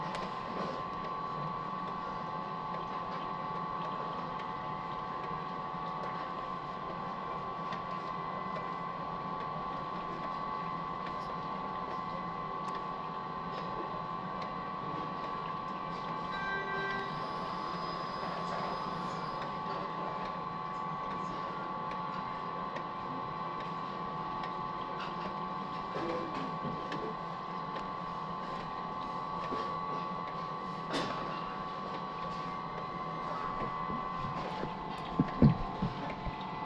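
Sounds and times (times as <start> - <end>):
revolving sushi conveyor mechanical whir: 0.0 - 36.6
soft chime: 16.3 - 18.1.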